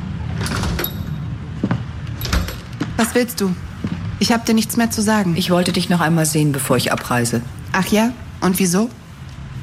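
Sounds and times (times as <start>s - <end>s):
sliding door rattling open: 0.2s - 1.3s
speech: 3.0s - 9.0s.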